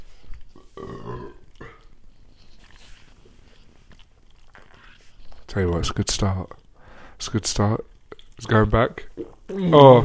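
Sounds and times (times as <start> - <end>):
soft rustling: 0.0 - 0.8, 1.8 - 5.6
quieter throaty noises: 0.0 - 10.0
loud burp after drinking fizzy water: 0.6 - 1.9
speech: 5.5 - 6.6, 7.2 - 10.0.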